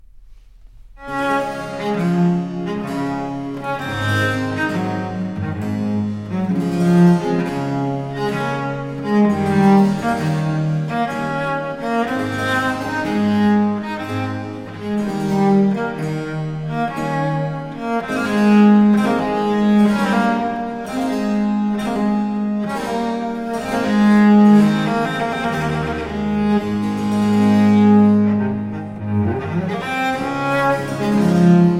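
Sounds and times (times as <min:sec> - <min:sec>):
cello concerto in D major andante movement: 0:00.0 - 0:31.7.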